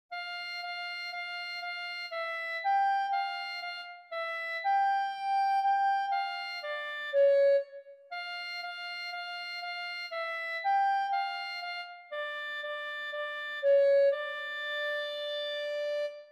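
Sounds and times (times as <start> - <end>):
clarinet: 0.1 - 16.3.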